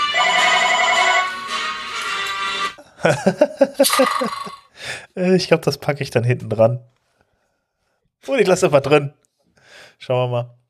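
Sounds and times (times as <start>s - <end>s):
electronic telephone ringtone: 0.1s - 1.4s, 3.9s - 4.6s
laughter: 2.9s - 4.6s
speech: 3.1s - 6.9s, 8.2s - 9.3s, 10.0s - 10.6s.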